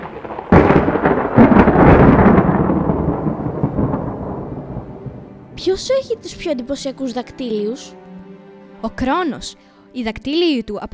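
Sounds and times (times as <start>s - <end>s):
steady rain: 0.0s - 6.2s
thunder crack and deep sustained rumble: 0.0s - 6.7s
speech: 5.6s - 8.0s, 8.8s - 10.9s.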